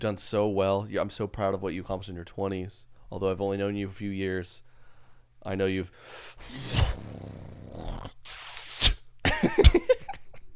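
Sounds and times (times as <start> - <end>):
speech: 0.0 - 4.7, 5.4 - 8.4
person spitting into a hand: 6.4 - 9.1.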